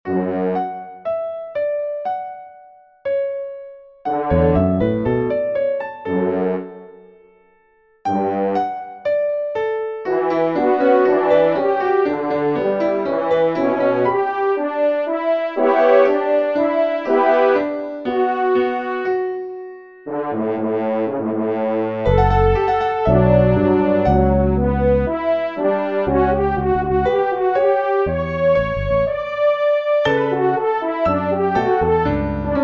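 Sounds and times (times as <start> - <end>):
piano: 0.0 - 32.6
French horn: 10.2 - 17.6, 20.1 - 32.6.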